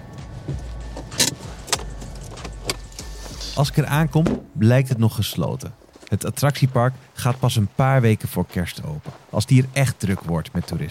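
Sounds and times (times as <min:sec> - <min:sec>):
steady low car engine rumble: 0:00.0 - 0:04.6
speech: 0:00.5 - 0:00.7, 0:03.6 - 0:10.8.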